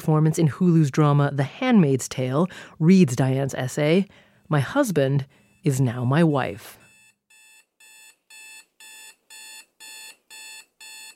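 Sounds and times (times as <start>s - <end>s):
speech: 0.0s - 6.8s
electronic alarm clock beeping: 4.7s - 11.1s.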